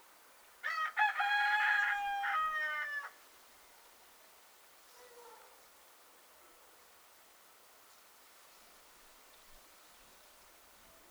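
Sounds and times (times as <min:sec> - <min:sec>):
rooster crowing: 0:00.6 - 0:03.2.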